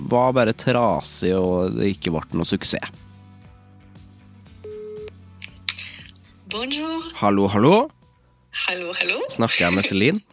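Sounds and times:
speech: 0.1s - 3.1s, 6.5s - 10.3s
telephone ring tone: 4.6s - 5.1s
phone line dialing clicks and beeps: 4.6s - 5.2s.

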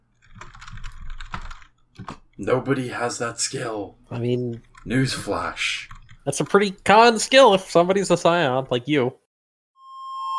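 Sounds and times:
fingers typing on a computer keyboard: 0.2s - 2.3s, 5.8s - 6.3s
speech: 2.4s - 9.2s.

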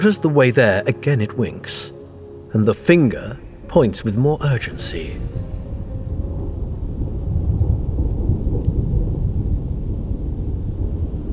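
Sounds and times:
speech: 0.0s - 5.5s
faint rain-like hiss: 1.6s - 6.9s
deep continuous thunder rumbling with lightning: 2.5s - 11.3s.

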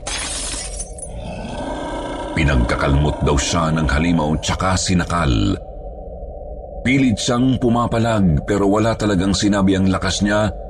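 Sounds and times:
shot glass falling and shattering: 0.0s - 1.1s
tinkling scatter of glass shards: 0.0s - 1.1s
dark rumbling ambience: 0.0s - 10.6s
speech: 2.4s - 5.7s, 6.8s - 10.6s.

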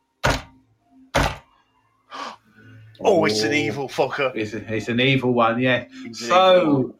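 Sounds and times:
loud dull knocks on a hard surface: 0.2s - 0.5s, 1.2s - 1.5s
speech: 3.0s - 6.9s.

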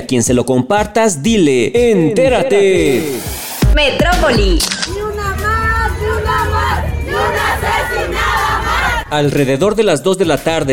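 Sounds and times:
speech: 0.0s - 4.9s, 9.1s - 10.7s
protest march crowd chanting and shouting: 3.6s - 9.4s.

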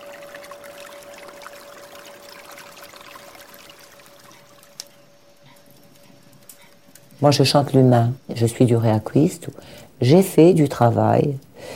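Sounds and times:
river water flowing over stones: 0.0s - 4.9s
speech: 7.2s - 11.7s.

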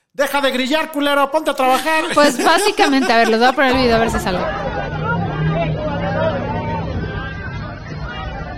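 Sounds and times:
speech: 0.2s - 4.9s
laughter: 1.6s - 5.6s
crowd shouting at the mayor: 1.8s - 8.5s.

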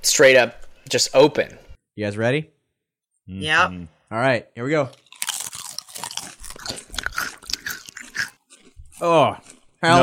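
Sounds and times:
speech: 0.0s - 2.6s, 3.3s - 5.0s, 9.0s - 10.0s
chewing a spicy packaged snack: 5.0s - 9.8s.

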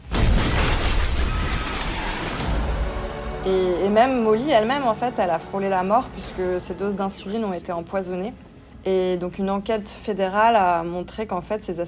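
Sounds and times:
bomb blast with heavy roaring rumble: 0.0s - 3.5s
faint tonal hum: 2.4s - 11.8s
speech: 3.4s - 11.8s.

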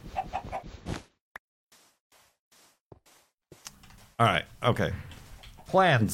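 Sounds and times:
chicken clucking: 0.0s - 0.7s
speech: 4.2s - 5.1s, 5.7s - 6.1s.

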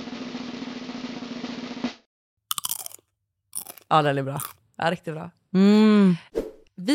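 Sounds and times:
nacho chip crunched and chewed into the microphone: 2.5s - 3.0s
speech: 3.9s - 6.9s.

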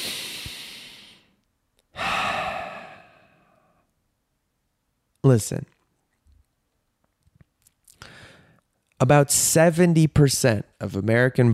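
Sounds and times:
big deep breaths: 0.0s - 3.9s, 8.0s - 8.7s
speech: 5.2s - 5.8s, 9.0s - 11.5s.

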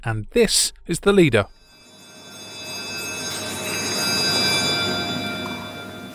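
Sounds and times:
speech: 0.0s - 1.6s
large electric House of Commons bell ringing in London: 1.5s - 6.1s.

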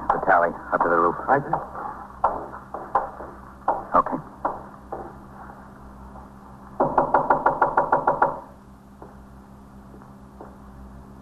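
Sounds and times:
police officer knocking on a front door: 0.1s - 5.2s, 6.8s - 9.2s
speech: 0.4s - 1.8s.

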